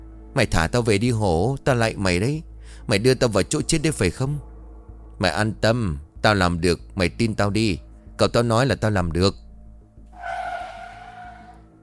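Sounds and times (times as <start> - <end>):
speech: 0.4 - 4.5, 5.2 - 9.4
car braking hard with harsh tire squeal: 10.1 - 11.8.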